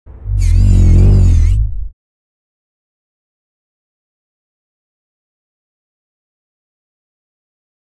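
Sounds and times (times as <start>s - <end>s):
heavy synth: 0.1s - 1.9s.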